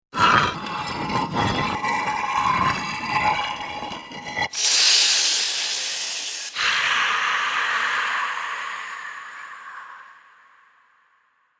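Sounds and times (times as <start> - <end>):
vampire opening stone tomb: 0.2 - 6.2
vampire waking with creepy hiss: 4.5 - 10.1.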